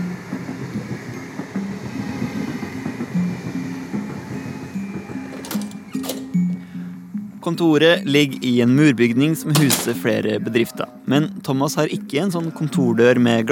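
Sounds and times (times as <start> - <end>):
train rumbling along railway tracks: 0.0 - 6.6
speech: 7.4 - 13.5.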